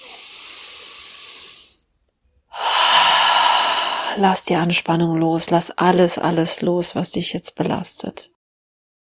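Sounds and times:
deep breathing in and out: 0.0s - 1.8s, 2.5s - 4.2s
speech: 4.2s - 8.4s.

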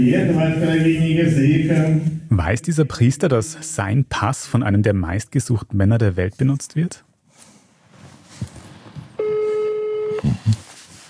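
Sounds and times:
speech: 0.0s - 7.1s
phone line ringback tone of an outgoing call from Germany: 9.2s - 10.2s.

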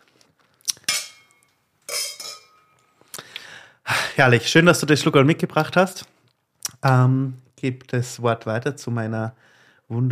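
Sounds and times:
champagne glasses clinking in a toast: 0.8s - 2.8s
speech: 4.2s - 6.2s, 6.8s - 10.1s.

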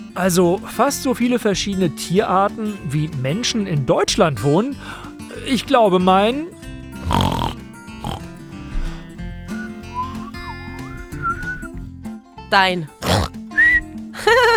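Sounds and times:
speech: 0.2s - 7.6s, 12.5s - 13.3s, 14.2s - 14.5s
comic pig grunting and snorting sound effect: 7.0s - 11.2s, 13.0s - 13.4s
sliding whistle tones: 9.5s - 11.7s.

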